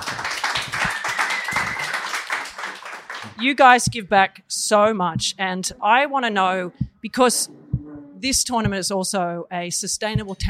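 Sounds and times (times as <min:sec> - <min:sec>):
audience applause at a live tennis tournament panel event: 0:00.0 - 0:03.4
speech: 0:03.4 - 0:07.6, 0:08.2 - 0:10.4.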